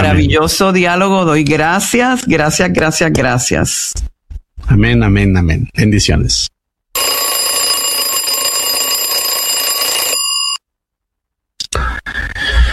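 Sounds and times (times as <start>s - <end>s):
speech: 0.0s - 6.5s
alarm clock ringing with bright metallic tone: 7.0s - 10.6s.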